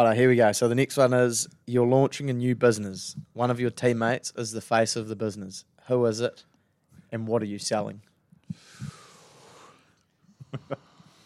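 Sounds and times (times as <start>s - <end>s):
speech: 0.0s - 6.5s, 7.1s - 8.9s
sharp intake of breath from a person reacting to a quiz question: 8.5s - 10.0s.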